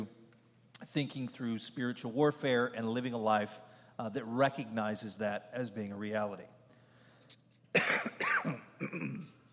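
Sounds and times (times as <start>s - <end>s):
speech: 0.9s - 6.6s
rough throaty coughs into a microphone: 7.7s - 9.4s.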